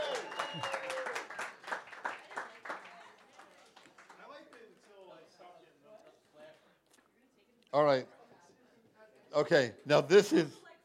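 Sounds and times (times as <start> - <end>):
crowd applauding: 0.0 - 5.2
speech: 7.8 - 8.2, 9.4 - 10.6.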